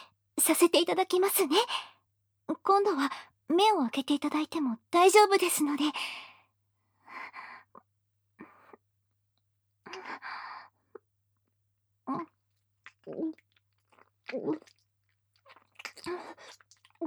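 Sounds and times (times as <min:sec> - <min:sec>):
speech: 0:00.5 - 0:01.9, 0:02.7 - 0:06.3, 0:13.1 - 0:13.4, 0:14.3 - 0:14.7, 0:16.1 - 0:17.0
wet kissing with tongue: 0:15.5 - 0:17.0.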